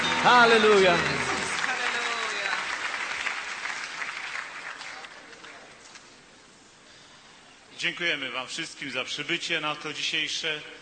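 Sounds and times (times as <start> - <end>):
congregation applauding at a church service and evangelistic meeting: 0.0 - 5.7
speech: 0.2 - 1.2, 7.8 - 10.8.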